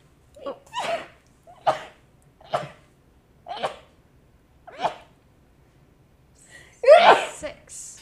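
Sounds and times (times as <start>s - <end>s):
person sneezing: 0.5s - 2.9s, 3.5s - 3.9s, 6.9s - 7.4s.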